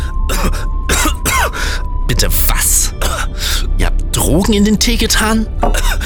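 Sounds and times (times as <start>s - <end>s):
person acting out a coughing fit after a sip of tea: 0.0s - 1.8s, 2.8s - 3.6s, 5.6s - 6.0s
speech: 0.3s - 0.8s, 2.1s - 3.0s, 4.3s - 6.0s.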